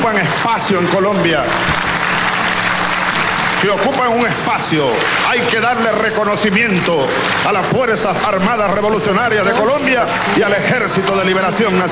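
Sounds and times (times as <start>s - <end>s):
speech: 0.0s - 1.9s, 3.6s - 11.8s
audience applause: 0.0s - 5.9s, 8.7s - 11.8s.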